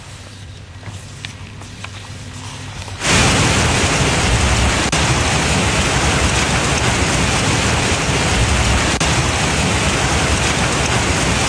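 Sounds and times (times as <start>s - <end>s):
hailstones falling on street and rooftops: 3.0s - 11.4s.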